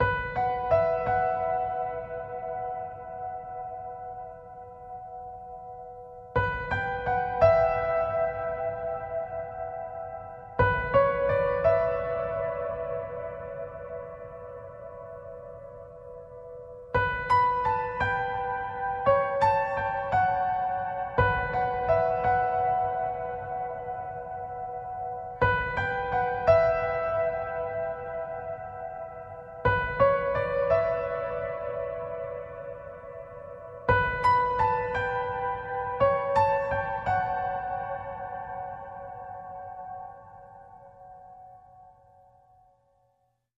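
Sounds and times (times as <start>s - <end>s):
solo piano: 0.0s - 43.3s.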